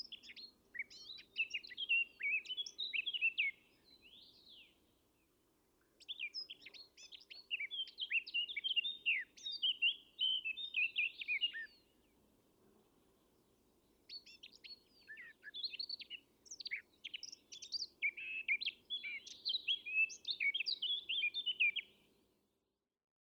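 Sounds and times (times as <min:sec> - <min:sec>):
Eurasian blackcap Sylvia atricapilla singing: 0:00.0 - 0:04.7, 0:06.0 - 0:11.8, 0:14.1 - 0:22.0.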